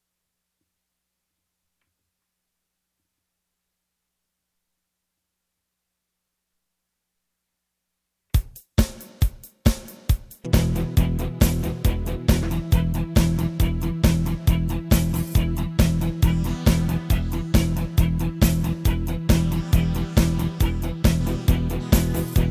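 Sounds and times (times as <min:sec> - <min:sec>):
alternative rock music: 0:10.4 - 0:22.4.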